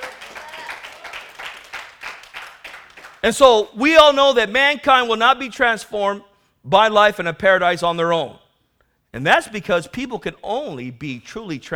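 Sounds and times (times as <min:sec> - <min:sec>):
audience clapping hands in a steady rhythm: 0:00.0 - 0:03.4
speech: 0:03.2 - 0:08.4, 0:09.2 - 0:11.7.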